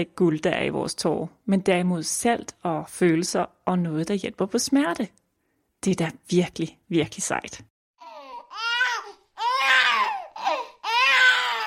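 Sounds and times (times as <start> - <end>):
speech: 0.0 - 5.2, 5.8 - 7.7
baby crying: 8.0 - 11.6.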